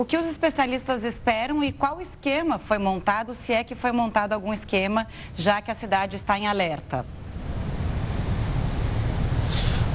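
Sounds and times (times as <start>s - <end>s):
speech: 0.0s - 7.2s
strong wind roaring across a beach: 7.1s - 9.9s.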